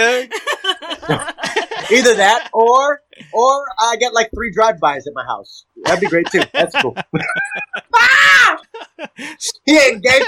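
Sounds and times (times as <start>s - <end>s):
speech: 0.0s - 0.5s, 1.1s - 10.2s
laughter: 0.0s - 2.9s, 5.8s - 10.2s
man screaming: 7.8s - 8.6s.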